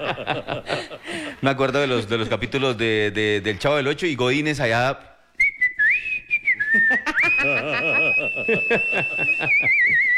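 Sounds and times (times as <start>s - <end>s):
laughter: 0.0s - 1.2s, 6.7s - 10.1s
speech: 0.0s - 5.1s, 6.8s - 10.1s
person whistling a warbling birdlike trill imitating a canary: 5.4s - 10.1s.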